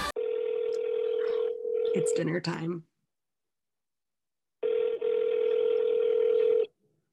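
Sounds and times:
telephone call ringing out: 0:00.2 - 0:02.1, 0:04.6 - 0:06.7
speech: 0:02.0 - 0:02.9.

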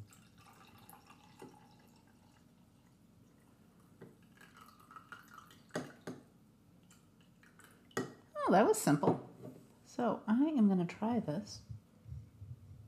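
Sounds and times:
coffee pouring from a French press: 0:00.0 - 0:06.2, 0:06.8 - 0:08.2
speech: 0:08.5 - 0:09.3, 0:10.0 - 0:11.7.

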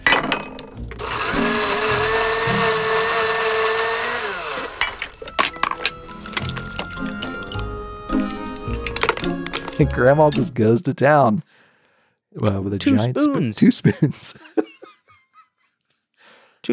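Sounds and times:
dishes clinking and clattering: 0:00.0 - 0:00.9, 0:04.8 - 0:10.5
kitchen blender blending food: 0:00.8 - 0:05.3
speech: 0:09.8 - 0:11.5, 0:12.4 - 0:14.6
laughter: 0:12.9 - 0:15.8.

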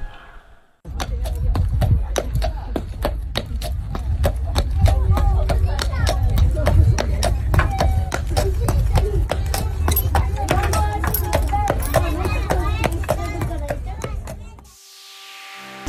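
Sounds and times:
Banei draft horse hooves clopping while hauling a carriage: 0:00.9 - 0:14.6
carriage carrying children creaking and rumbling: 0:06.4 - 0:13.6.

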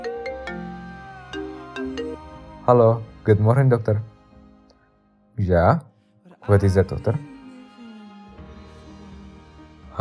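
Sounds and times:
phone ringtone chiming melody over a sustained backing tone: 0:00.0 - 0:02.5
speech: 0:02.7 - 0:04.1, 0:05.4 - 0:07.3.

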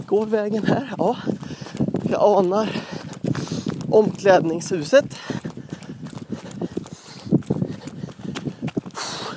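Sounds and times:
running footsteps on a path in total darkness: 0:00.0 - 0:09.3
speech: 0:00.1 - 0:05.4.

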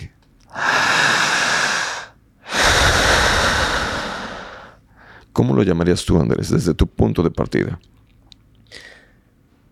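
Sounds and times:
loud mouth breathing close to the mic: 0:00.5 - 0:05.2
speech: 0:05.4 - 0:08.0.

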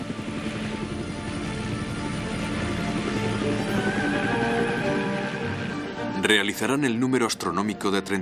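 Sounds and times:
American Vietnam War military helicopter rotor blades chopping: 0:00.0 - 0:06.8
speech: 0:06.3 - 0:08.2.

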